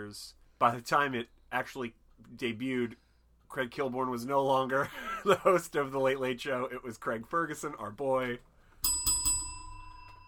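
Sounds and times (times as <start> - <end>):
speech: 0.0 - 8.5
bell dinging: 8.8 - 10.2.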